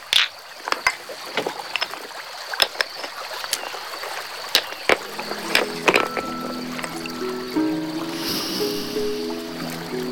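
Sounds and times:
pebbles knocking together on a riverbank under someone hopping: 0:00.0 - 0:07.2
flowing river water: 0:00.0 - 0:10.0.

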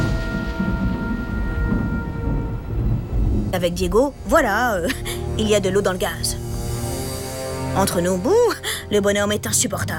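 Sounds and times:
deep rolling thunder of a storm: 0:00.0 - 0:07.1
speech: 0:03.5 - 0:06.4, 0:07.7 - 0:09.9.

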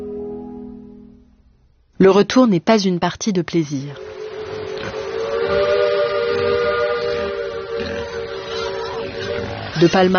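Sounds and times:
speech: 0:02.0 - 0:04.1, 0:09.8 - 0:10.1
steamboat steam whistle blast: 0:04.0 - 0:09.7.

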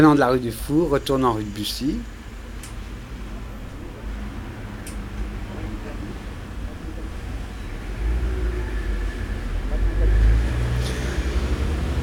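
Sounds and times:
speech: 0:00.0 - 0:02.2
street traffic rumbling: 0:00.0 - 0:12.0
delivery moped ridden by a courier passing: 0:03.8 - 0:12.0.

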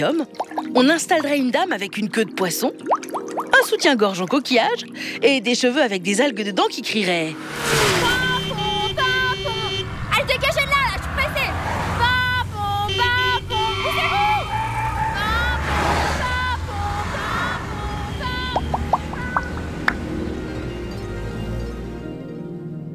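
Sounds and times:
speech: 0:00.0 - 0:03.0, 0:03.6 - 0:08.1
traffic engine rumble: 0:07.0 - 0:22.0
car horns honking in traffic: 0:07.6 - 0:20.0
fire truck siren with two-tone wail: 0:07.7 - 0:19.4.

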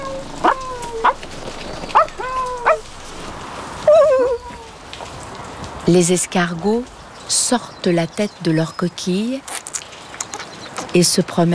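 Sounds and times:
dog whining: 0:00.0 - 0:03.0, 0:03.8 - 0:04.8
dog barking with yelping tails: 0:00.4 - 0:01.2, 0:01.9 - 0:02.9
speech: 0:05.9 - 0:09.6, 0:10.9 - 0:11.5.

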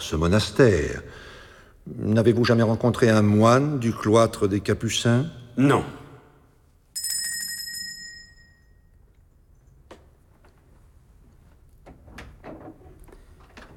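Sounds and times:
speech: 0:00.0 - 0:06.0
bright bell ringing: 0:06.9 - 0:09.0
clicks and knocks of a door being opened: 0:11.8 - 0:13.7.

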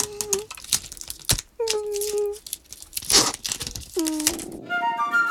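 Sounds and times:
high wavering whimpers of an animal: 0:00.0 - 0:00.5, 0:03.9 - 0:05.2
sticky tape peeled off an animal's paws: 0:00.0 - 0:04.6.

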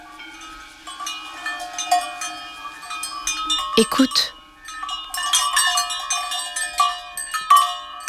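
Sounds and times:
cowbells on a grazing herd of cows on a mountain: 0:00.0 - 0:08.0
speech: 0:03.8 - 0:04.4.

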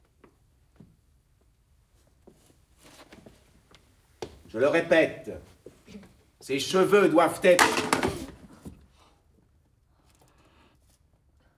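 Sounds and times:
speech: 0:04.5 - 0:05.5, 0:06.4 - 0:08.1
school slate falling and clattering on the floor: 0:07.5 - 0:08.5.

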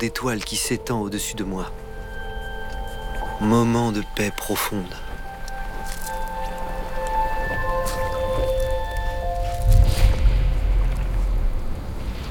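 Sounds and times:
speech: 0:00.0 - 0:01.8, 0:03.4 - 0:05.1
faint sustained tones: 0:00.0 - 0:12.3
scattered raindrops pattering: 0:00.0 - 0:12.3
steady low hum: 0:00.0 - 0:12.3.

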